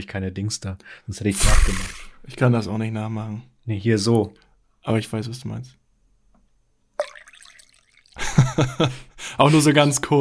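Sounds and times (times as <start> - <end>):
speech: 0.0 - 5.8, 8.6 - 10.2
splashy trickle of urine into a bucket: 7.0 - 8.2
person possibly laughing: 8.2 - 8.9.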